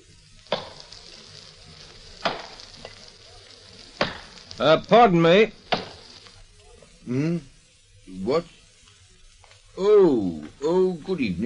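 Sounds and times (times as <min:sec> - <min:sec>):
quiet hissing background: 0:00.0 - 0:11.4
speech: 0:04.6 - 0:05.6, 0:07.1 - 0:07.5, 0:08.1 - 0:08.6, 0:09.8 - 0:11.4
axe chopping wood: 0:05.7 - 0:06.0.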